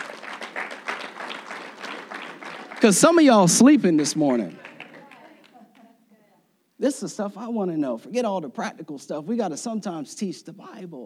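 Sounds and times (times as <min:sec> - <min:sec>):
audience at a Bible sermon applauding: 0:00.0 - 0:05.6
speech: 0:02.8 - 0:04.6, 0:07.0 - 0:11.0.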